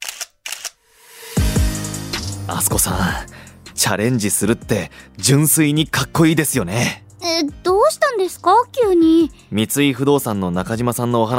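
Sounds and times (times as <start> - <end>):
camera shutter clicks: 0.0 - 0.8
speech: 2.5 - 11.3.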